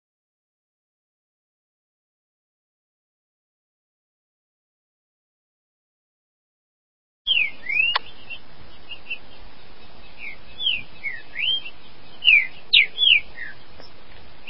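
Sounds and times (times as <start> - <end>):
Green-winged saltator song of rich whistled notes: 7.3 - 14.4.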